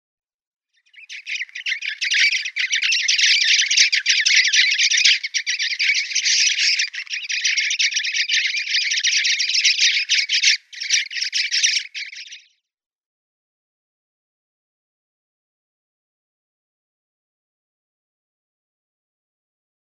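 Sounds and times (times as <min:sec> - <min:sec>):
Sudan Golden Sparrow calls: 0:00.8 - 0:12.5.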